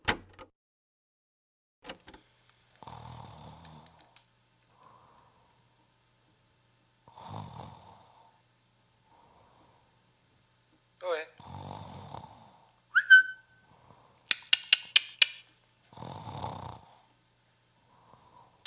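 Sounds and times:
person snoring while asleep: 2.8 - 4.0, 7.1 - 8.4, 11.4 - 12.7, 15.9 - 17.1
whistling snorting breaths: 13.0 - 14.8.

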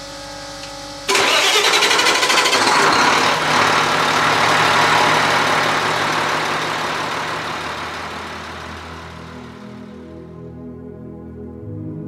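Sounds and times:
ship engine firing up and rumbling: 1.1 - 10.2.

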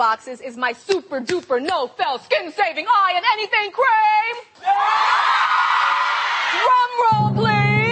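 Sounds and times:
speech: 0.0 - 5.7, 6.5 - 7.8
studio audience screaming and cheering: 4.6 - 6.7.

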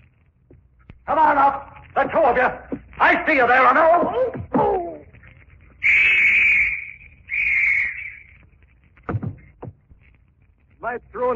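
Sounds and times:
speech: 1.1 - 4.6, 10.8 - 11.3
police whistle blasts: 5.8 - 8.3.

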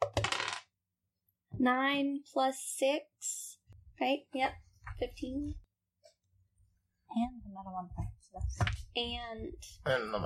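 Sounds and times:
dice clattering across a hard tabletop: 0.0 - 0.7
speech: 1.6 - 5.6, 7.1 - 10.2.

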